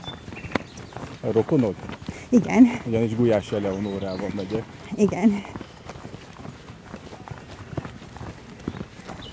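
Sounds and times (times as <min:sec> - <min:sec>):
herd of cattle with calves, hooves clattering on a hard road: 0:00.0 - 0:09.3
faint murmur: 0:00.5 - 0:09.3
speech: 0:01.2 - 0:05.6.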